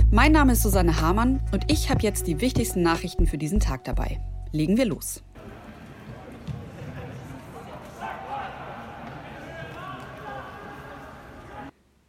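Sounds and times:
speech: 0.1 - 5.3
football players shouting in an empty stadium: 5.4 - 11.7.

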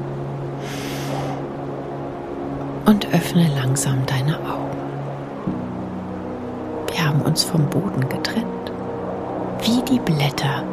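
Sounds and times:
humming tonal drone: 0.0 - 10.7
deep inhale during a guided meditation: 0.6 - 1.5
speech: 2.9 - 4.9, 7.0 - 8.8, 9.6 - 10.7.

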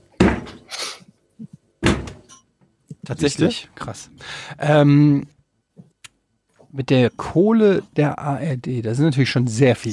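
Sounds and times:
hollow thuds of a kick against a refrigerator: 0.2 - 0.6, 1.8 - 2.3
speech: 3.1 - 5.4, 6.7 - 9.9.

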